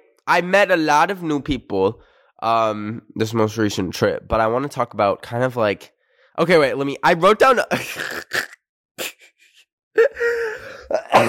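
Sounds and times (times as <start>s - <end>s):
speech: 0.3s - 9.1s, 10.0s - 11.2s
person coughing with harsh rasping bursts: 7.7s - 9.3s, 10.0s - 11.2s
person laughing: 7.7s - 11.2s.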